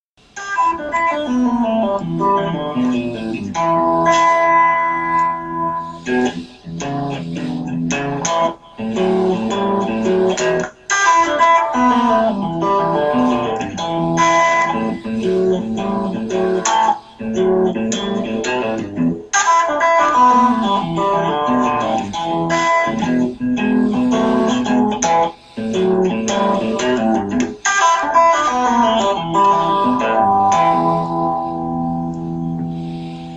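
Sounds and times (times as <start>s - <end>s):
E blues scale lick in a blues lesson: 0.2s - 33.3s.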